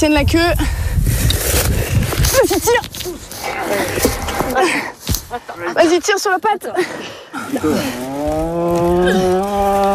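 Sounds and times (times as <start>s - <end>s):
speech: 0.0s - 1.7s, 2.4s - 9.2s
cow at risk of dying from hemorrhage moaning in distress: 7.7s - 9.9s.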